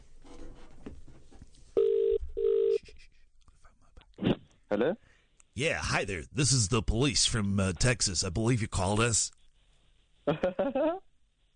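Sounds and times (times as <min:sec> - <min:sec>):
faint noise: 0:00.0 - 0:11.5
telephone ringback tone on outgoing call: 0:01.8 - 0:02.8
speech: 0:04.8 - 0:09.4, 0:10.3 - 0:11.1.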